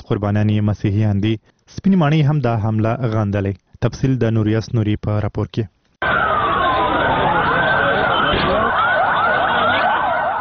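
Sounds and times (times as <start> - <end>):
speech: 0.1 - 6.2
ambulance sirens wailing after a bomb blast in a Lahore park car park: 6.0 - 10.3.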